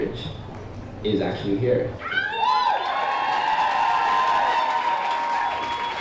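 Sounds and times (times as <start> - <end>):
speech: 1.0 - 2.2
large crowd cheering and shouting in a reverberant indoor hall: 2.0 - 5.9.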